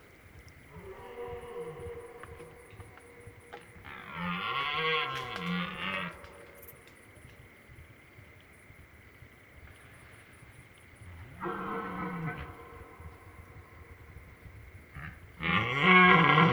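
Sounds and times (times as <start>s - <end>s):
faint insect ticking: 0.0s - 16.4s
red deer stag roaring during the rut at night in Drôme France: 0.7s - 3.1s, 3.8s - 6.5s, 11.3s - 13.7s, 14.9s - 16.5s.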